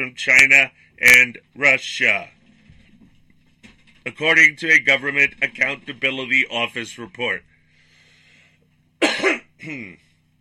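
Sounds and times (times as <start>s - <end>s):
speech: 0.0s - 2.4s, 4.0s - 7.5s, 9.0s - 10.0s
person coughing: 9.0s - 10.1s.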